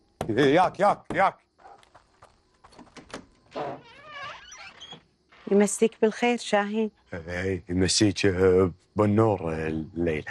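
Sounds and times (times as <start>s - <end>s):
speech: 0.3s - 1.4s, 5.5s - 10.3s
door creaking as it swings open: 2.6s - 6.0s.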